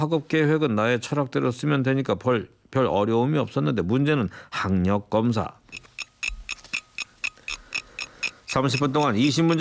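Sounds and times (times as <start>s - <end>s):
speech: 0.0s - 5.9s, 8.5s - 9.5s
clock second hand ticking: 5.7s - 9.5s.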